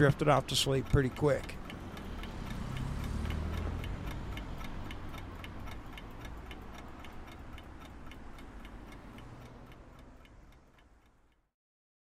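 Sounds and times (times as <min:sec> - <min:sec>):
speech: 0:00.0 - 0:01.6
low rumbling hum of passing traffic: 0:00.0 - 0:11.5
wind-up alarm clock ticking inside a parked car: 0:00.0 - 0:11.5.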